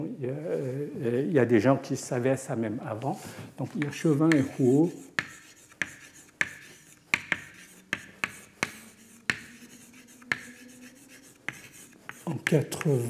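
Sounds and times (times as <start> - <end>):
speech: 0.0 - 5.1, 12.5 - 13.0
chalk writing on a board: 3.7 - 13.0.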